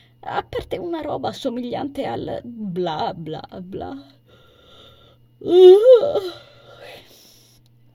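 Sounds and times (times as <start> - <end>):
speech: 0.2 - 4.2, 5.4 - 7.0
voiced yawn: 5.4 - 7.1.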